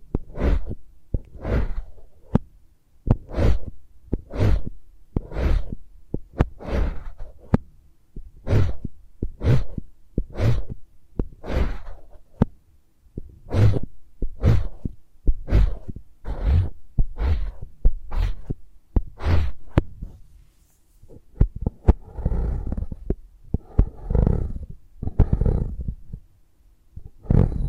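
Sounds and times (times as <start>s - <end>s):
crisp ASMR tapping and brushing strokes with soft low thumps: 0.0s - 2.5s, 3.1s - 12.6s, 13.2s - 22.0s
rubbing against the microphone: 0.1s - 2.5s, 3.1s - 7.6s, 8.4s - 12.5s, 13.2s - 26.2s.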